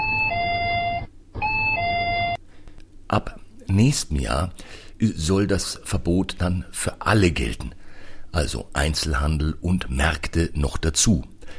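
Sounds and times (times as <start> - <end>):
electronic two-tone entrance door chime at a store in Thailand: 0.0 - 2.4
low hum: 0.0 - 11.5
speech: 3.1 - 11.5.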